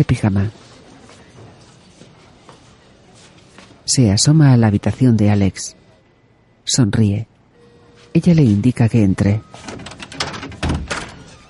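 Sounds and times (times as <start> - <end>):
speech: 0.0 - 0.6, 4.0 - 5.8, 6.7 - 7.3, 8.1 - 9.8
bedroom door nudged open with an elbow: 9.6 - 11.4.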